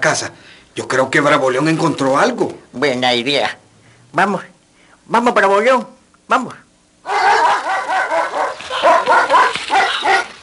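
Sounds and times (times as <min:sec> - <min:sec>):
speech: 0:00.0 - 0:04.5, 0:05.1 - 0:07.2
dog barking excitedly with high yipping barks: 0:07.1 - 0:10.4.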